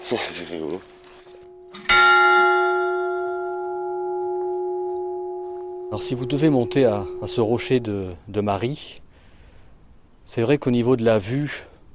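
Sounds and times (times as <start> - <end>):
speech: 0.1 - 1.0, 5.9 - 9.0, 10.3 - 11.7
chapel bell at Sainte-Marie rung by someone: 1.4 - 8.3.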